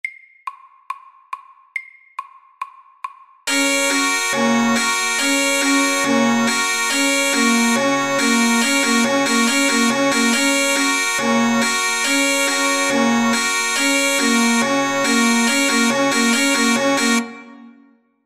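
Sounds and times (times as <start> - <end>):
fast alarm at 140: 3.5 - 17.5.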